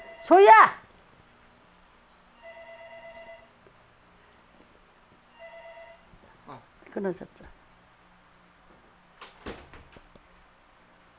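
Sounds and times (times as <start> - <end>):
phone ringing in short electronic warbling bursts: 0.0 - 0.6, 2.4 - 3.6, 5.4 - 6.1
speech: 0.2 - 0.8, 7.0 - 7.6.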